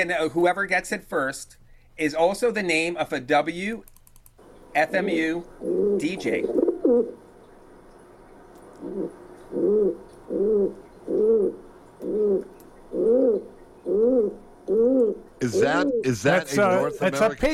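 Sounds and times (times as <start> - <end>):
speech: 0.0 - 4.0, 4.7 - 7.2, 8.8 - 11.6, 12.3 - 17.5
pigeon cooing: 5.5 - 7.2, 8.8 - 17.2.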